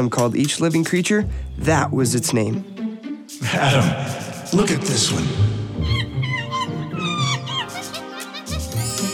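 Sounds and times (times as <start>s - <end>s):
speech: 0.0s - 2.8s, 3.4s - 6.0s
laughter: 3.4s - 5.2s, 5.8s - 9.1s
monkey chattering in shrill squeaky calls: 5.8s - 9.1s.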